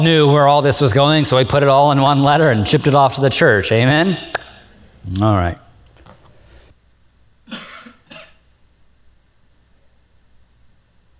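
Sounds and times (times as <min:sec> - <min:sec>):
speech: 0:00.0 - 0:04.4, 0:05.0 - 0:05.6
steady low hiss: 0:00.0 - 0:11.1
person coughing away from the microphone: 0:07.5 - 0:08.4.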